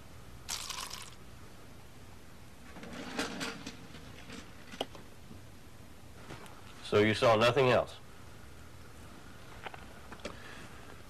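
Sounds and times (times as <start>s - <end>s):
water pouring into a container: 0.5s - 1.2s
speech: 6.9s - 8.0s.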